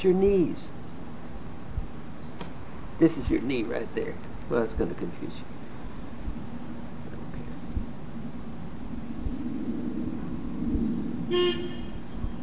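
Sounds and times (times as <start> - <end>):
speech: 0.0 - 0.8, 3.0 - 5.5, 11.3 - 11.8
outdoor low rumble of traffic or engine noise: 0.0 - 12.4
car horn toot: 11.3 - 12.0.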